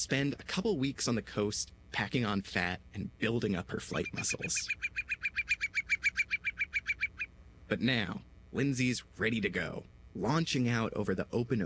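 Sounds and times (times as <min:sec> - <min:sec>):
speech: 0:00.0 - 0:05.3, 0:07.7 - 0:11.6
whimbrel piping call: 0:03.9 - 0:07.3.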